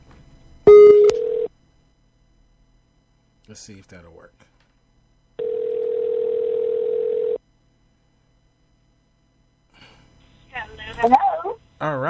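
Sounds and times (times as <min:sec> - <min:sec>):
telephone dial tone while placing a call: 0:01.0 - 0:01.5, 0:05.4 - 0:07.4
speech: 0:03.5 - 0:04.6, 0:11.0 - 0:12.0.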